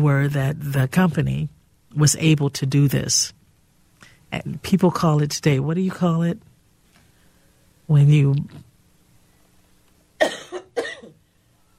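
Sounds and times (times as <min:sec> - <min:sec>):
speech: 0:00.0 - 0:03.4, 0:04.3 - 0:06.5, 0:07.9 - 0:08.7
harsh coughs: 0:10.2 - 0:11.2.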